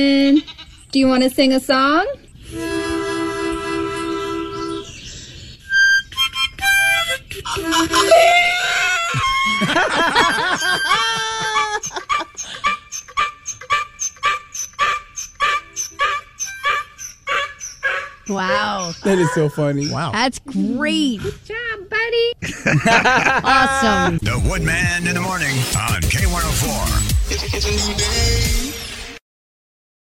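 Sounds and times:
speech: 0:00.0 - 0:02.6, 0:18.4 - 0:28.8
harmonica playing sustained chords: 0:02.3 - 0:20.9, 0:23.3 - 0:29.2
donkey braying with rhythmic honking gasps: 0:02.5 - 0:20.2
laughter: 0:07.4 - 0:12.9, 0:22.4 - 0:24.4.

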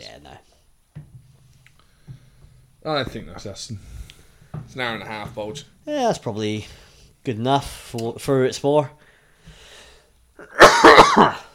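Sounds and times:
speech: 0:00.1 - 0:00.6, 0:02.8 - 0:04.0, 0:04.7 - 0:09.0, 0:10.4 - 0:11.5
person coughing: 0:10.4 - 0:11.5.

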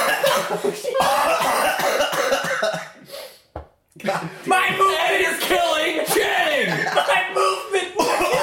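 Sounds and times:
laughter: 0:00.0 - 0:01.5, 0:04.5 - 0:08.4
man coughing in a harsh raspy fit: 0:00.0 - 0:03.0, 0:06.8 - 0:08.4
speech: 0:00.5 - 0:02.8.

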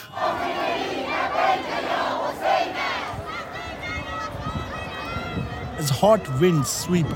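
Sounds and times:
large crowd chanting religious slogans in unison: 0:00.0 - 0:05.8
dense background of shouting and murmur: 0:00.0 - 0:07.1
speech: 0:05.8 - 0:07.1.

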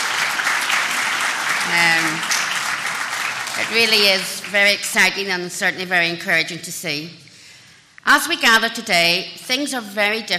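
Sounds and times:
sustained applause from a large crowd: 0:00.0 - 0:04.9
speech: 0:01.7 - 0:02.4, 0:03.6 - 0:07.2, 0:08.0 - 0:10.3.

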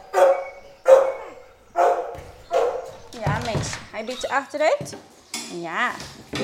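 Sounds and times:
dog barking sharply: 0:00.0 - 0:03.1
speech: 0:03.1 - 0:06.4.

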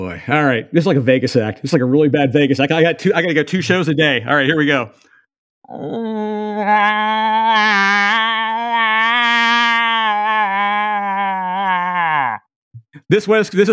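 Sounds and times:
speech: 0:00.0 - 0:08.9, 0:13.1 - 0:13.7
person imitating a cow moose call with a long nasal wavering moan: 0:05.7 - 0:12.5.

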